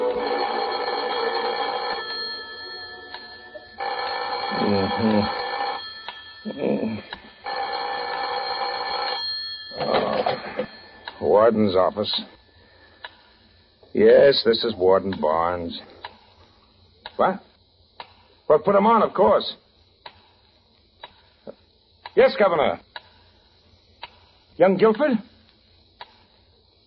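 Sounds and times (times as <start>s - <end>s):
old-fashioned telephone bell ringing at a warden's office: 0.1s - 11.3s
speech: 11.5s - 12.3s, 14.0s - 15.9s, 17.2s - 17.5s, 18.5s - 19.6s, 22.2s - 22.9s, 24.6s - 25.3s.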